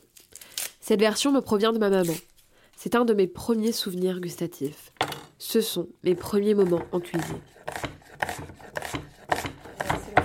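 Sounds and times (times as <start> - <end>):
speech: 0.9 - 7.6
knife chopping onions: 6.2 - 10.2.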